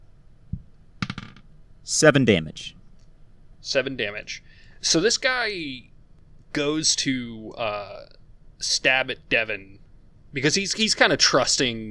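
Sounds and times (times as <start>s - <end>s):
eight-sided die rolling on a tabletop: 1.0s - 1.5s
speech: 1.8s - 2.8s, 3.6s - 5.9s, 6.5s - 11.9s.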